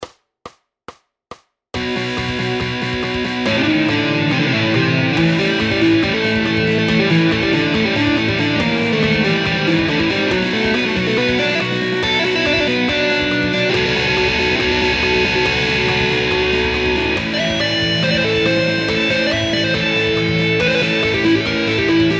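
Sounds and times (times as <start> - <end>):
electric solo: 1.8 - 22.1.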